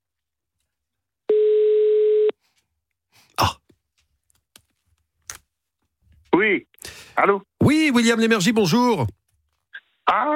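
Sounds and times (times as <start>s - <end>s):
telephone ringing tone on an outgoing call: 1.3s - 2.3s
speech: 6.4s - 9.2s, 10.1s - 10.3s.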